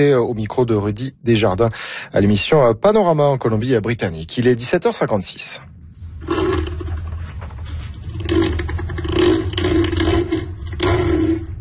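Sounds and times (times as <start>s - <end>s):
speech: 0.0s - 5.7s
elephant seal bellowing: 6.2s - 11.5s.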